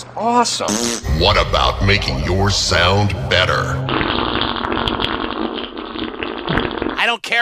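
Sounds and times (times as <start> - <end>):
speech: 0.2 - 4.2, 7.0 - 7.4
long sputtering fart: 0.7 - 7.0.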